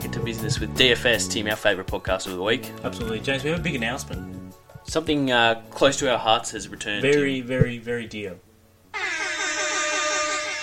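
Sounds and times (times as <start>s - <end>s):
speech: 0.2s - 8.4s
air horn blast: 8.9s - 10.6s.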